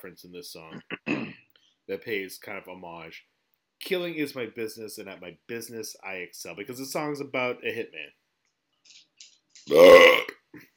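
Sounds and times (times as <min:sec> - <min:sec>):
speech: 0:00.0 - 0:08.2, 0:09.7 - 0:10.7
loud drawn-out resonant gurgly burp: 0:00.8 - 0:01.4, 0:09.7 - 0:10.4.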